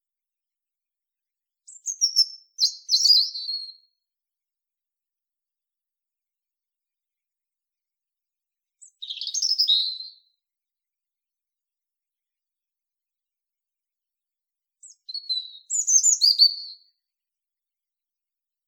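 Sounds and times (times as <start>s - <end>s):
European robin song: 8.8s - 10.0s, 14.8s - 16.8s.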